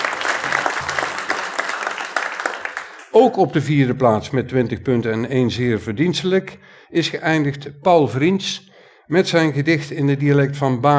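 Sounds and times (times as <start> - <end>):
audience applauding: 0.0 - 3.2
speech: 3.2 - 10.9.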